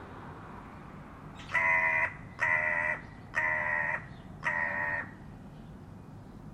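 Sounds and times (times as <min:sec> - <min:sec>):
harsh nasal buzzy bird calls: 0:01.3 - 0:05.8.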